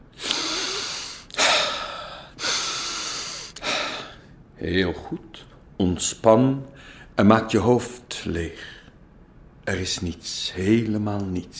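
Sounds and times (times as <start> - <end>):
breathing in and out during a relaxation exercise: 0.1 - 4.4, 6.7 - 7.2
speech: 4.6 - 8.8, 9.6 - 11.5.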